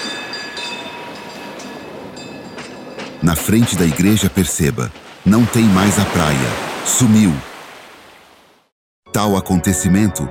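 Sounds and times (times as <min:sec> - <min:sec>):
tram running on rails: 0:00.0 - 0:06.2
speech: 0:03.2 - 0:07.5, 0:09.2 - 0:10.2.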